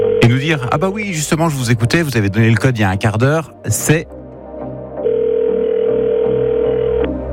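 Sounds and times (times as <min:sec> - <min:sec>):
outgoing phone call ringing tone: 0:00.0 - 0:00.8, 0:05.0 - 0:07.2
speech: 0:00.3 - 0:04.2.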